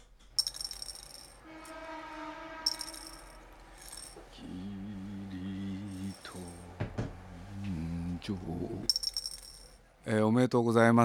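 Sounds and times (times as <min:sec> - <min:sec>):
dice clattering and rattling on a hard surface: 0:00.4 - 0:01.4, 0:02.7 - 0:04.2, 0:08.9 - 0:09.7
soft sustained tone: 0:00.4 - 0:09.9
speech: 0:08.2 - 0:09.0, 0:10.1 - 0:11.0.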